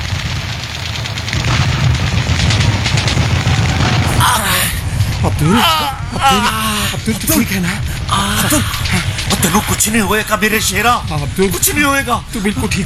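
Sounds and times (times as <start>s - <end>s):
sustained rapid gunfire crackling: 0.0s - 5.7s, 6.9s - 12.8s
heavy low rumble of booms: 0.0s - 12.8s
people shouting: 3.2s - 4.8s, 5.4s - 6.9s
speech: 5.4s - 12.8s.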